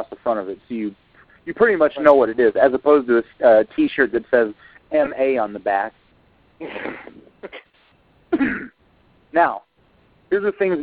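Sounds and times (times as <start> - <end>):
speech: 0.0 - 6.0, 6.6 - 7.6, 9.3 - 9.7, 10.3 - 10.8
throat clearing: 6.6 - 7.7, 8.4 - 8.8.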